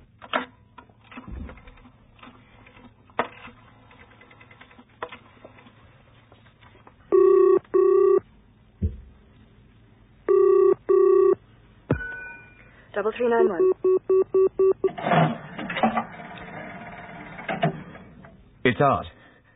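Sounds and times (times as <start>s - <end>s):
telephone double rings through the earpiece of a phone booth: 7.1s - 8.2s, 10.3s - 11.4s, 13.4s - 15.0s
speech: 13.0s - 13.8s, 18.7s - 19.2s.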